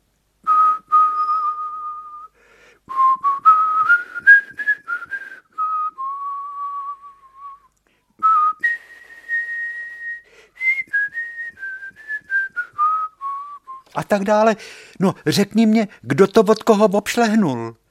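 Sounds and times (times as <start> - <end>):
person whistling a slow lilting melody: 0.4 - 14.0
speech: 14.0 - 17.8.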